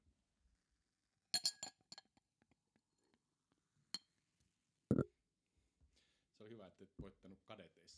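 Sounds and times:
glasses clinking over sparkling wine: 0:01.4 - 0:02.0
speech: 0:06.4 - 0:07.9.

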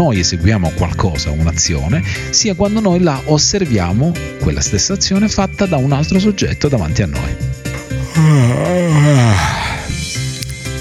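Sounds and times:
speech: 0:00.0 - 0:09.7
person yawning loudly: 0:08.0 - 0:10.0.

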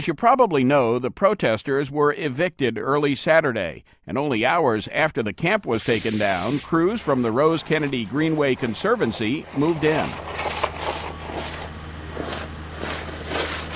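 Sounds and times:
speech: 0:00.0 - 0:10.6
air spade blasting air into compacted soil on a city greenway: 0:05.7 - 0:13.7.

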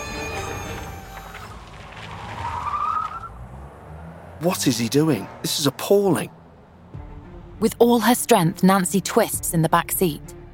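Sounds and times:
tire squeal of car speeding off: 0:00.0 - 0:05.7
car engine revving hard: 0:00.0 - 0:09.4
speech: 0:04.4 - 0:06.4, 0:07.6 - 0:10.4.

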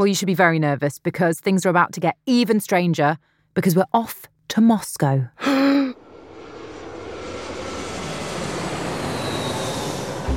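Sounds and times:
speech: 0:00.0 - 0:05.6
jet airliner's engines roaring at an airport in freezing weather: 0:06.0 - 0:10.3.

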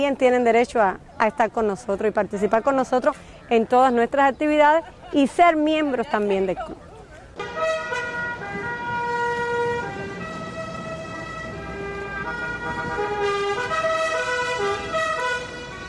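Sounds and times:
speech: 0:00.0 - 0:06.8
rumble of vehicles on the street in Havana: 0:00.0 - 0:15.8
car horns blaring during a street procession in Havana: 0:07.4 - 0:15.8.

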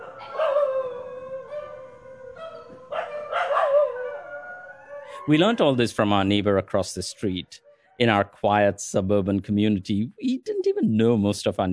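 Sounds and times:
several dogs howling in chorus: 0:00.0 - 0:05.8
dog yips: 0:02.4 - 0:04.0
speech: 0:05.3 - 0:11.7.

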